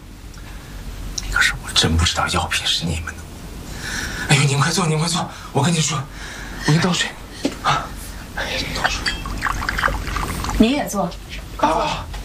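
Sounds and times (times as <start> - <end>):
voices talking: 1.2 - 12.1
water poured into a cup for a guest: 8.9 - 10.7.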